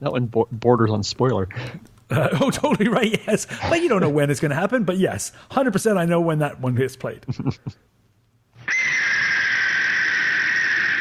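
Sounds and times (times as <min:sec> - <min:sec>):
speech: 0:00.0 - 0:07.9
laughter: 0:02.1 - 0:04.2, 0:07.2 - 0:07.8
piercing harsh screeching sustained scream: 0:08.6 - 0:10.9.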